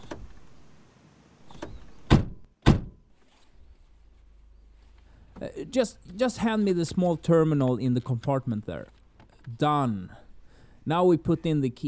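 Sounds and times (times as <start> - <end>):
solid rented car door thunks: 1.5 - 3.0
quiet rustling: 3.1 - 9.7
faint shuffling of people getting into a rented car: 3.1 - 10.7
speech: 5.6 - 10.2, 10.8 - 11.8.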